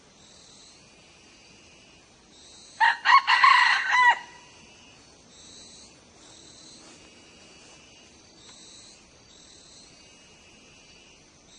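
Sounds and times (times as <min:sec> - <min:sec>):
background hiss: 0:00.0 - 0:11.5
young male red junglefowl crowing: 0:02.8 - 0:04.5.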